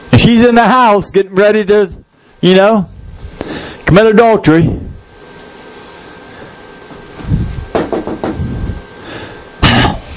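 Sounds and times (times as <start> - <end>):
low room rumble: 0.0 - 10.1
speech: 0.2 - 2.9, 3.9 - 4.9
knocking on a door: 7.7 - 8.4.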